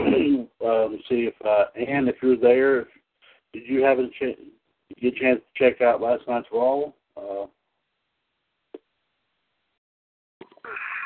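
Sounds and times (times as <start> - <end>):
person sneezing: 0.0 - 0.5
speech: 1.0 - 7.6.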